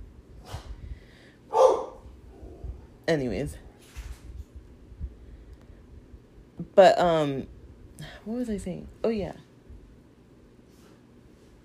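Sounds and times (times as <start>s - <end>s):
dog barking and yelping: 1.5s - 2.0s
speech: 3.1s - 3.6s, 6.8s - 7.5s, 8.2s - 9.4s.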